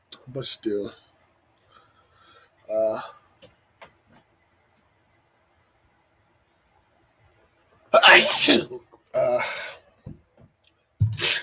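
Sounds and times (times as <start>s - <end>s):
speech: 0.3s - 1.0s, 2.7s - 3.2s, 8.1s - 9.7s
person sneezing: 8.0s - 9.7s.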